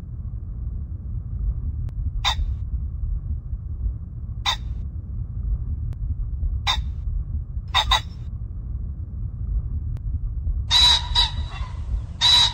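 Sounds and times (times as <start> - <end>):
constant low-frequency background rumble: 0.0 - 12.5
common pheasant crowing at Baiyangdian: 2.2 - 2.5, 4.5 - 4.7, 7.8 - 8.1, 10.7 - 12.5.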